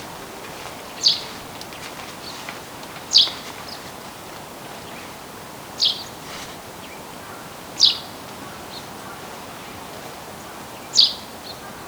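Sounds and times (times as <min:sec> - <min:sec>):
background hiss: 0:00.0 - 0:11.4
Eurasian tree sparrow Passer montanus chirps: 0:01.0 - 0:01.4, 0:05.8 - 0:06.2, 0:07.8 - 0:08.1, 0:10.8 - 0:11.2.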